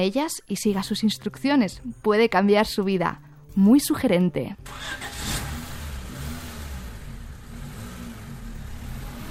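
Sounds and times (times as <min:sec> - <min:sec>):
speech: 0:00.0 - 0:05.2
car engine running: 0:04.6 - 0:09.2.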